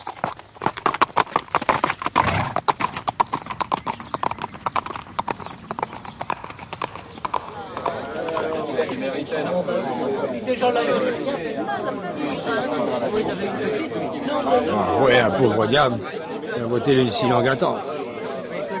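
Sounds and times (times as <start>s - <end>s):
horse hooves clattering on a hard surface: 0.0s - 9.6s
busy murmur of many voices chattering: 6.8s - 18.7s
speech: 9.3s - 18.0s.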